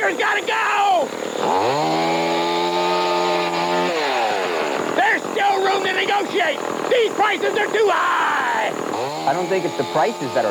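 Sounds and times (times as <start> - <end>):
speech: 0.1 - 1.9, 6.0 - 10.4
chainsaw engine revving: 1.0 - 10.4.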